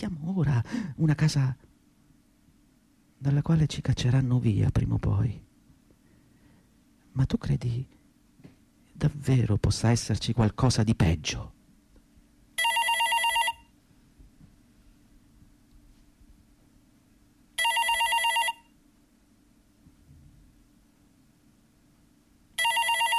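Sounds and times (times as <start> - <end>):
speech: 0.0 - 1.6, 3.2 - 5.4, 7.2 - 8.0, 9.0 - 11.6
telephone bell ringing: 12.6 - 13.7, 17.6 - 18.7, 22.6 - 23.1.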